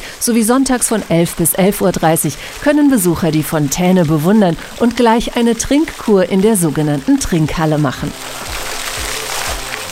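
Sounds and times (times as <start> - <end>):
river water rushing and babbling: 0.0 - 9.9
speech: 0.2 - 8.5.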